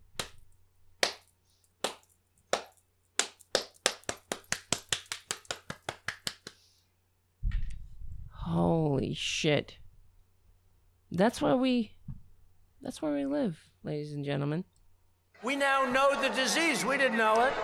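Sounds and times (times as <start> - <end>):
lone pair of hands clapping: 0.0 - 0.4, 1.0 - 6.6
speech: 9.1 - 9.8, 11.1 - 12.0, 12.8 - 14.7, 15.4 - 17.6.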